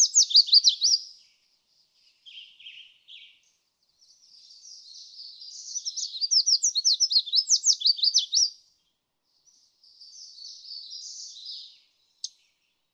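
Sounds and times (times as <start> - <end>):
red-faced warbler twittering song: 0.0 - 12.9.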